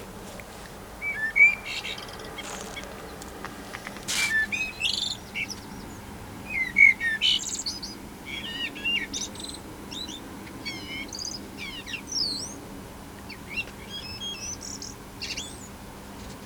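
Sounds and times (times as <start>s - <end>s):
Common blackbird Turdus merula whistled song with scratchy twitters: 1.0s - 2.6s, 4.2s - 12.6s, 13.5s - 15.7s.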